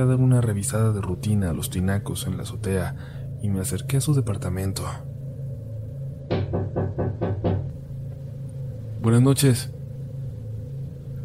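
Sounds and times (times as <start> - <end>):
speech: 0.0 - 5.1, 9.0 - 9.8
low hum: 0.0 - 11.2
firm knocking on a door: 6.3 - 7.7.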